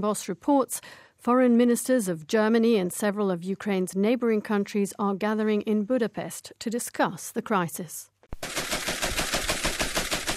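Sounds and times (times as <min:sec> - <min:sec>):
speech: 0:00.0 - 0:08.6
rapid automatic gunfire from troops massing near a border crisis zone: 0:08.4 - 0:10.3.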